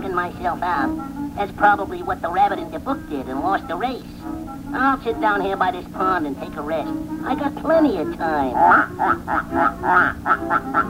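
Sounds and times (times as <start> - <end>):
speech: 0.2 - 10.8
ducks quacking on a pond: 4.8 - 10.8.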